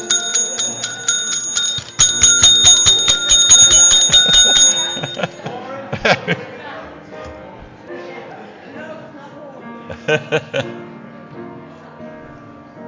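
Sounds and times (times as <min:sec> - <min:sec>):
bell ringing with a metallic tone: 0:00.0 - 0:05.6
laughter: 0:04.0 - 0:07.0, 0:09.8 - 0:11.0.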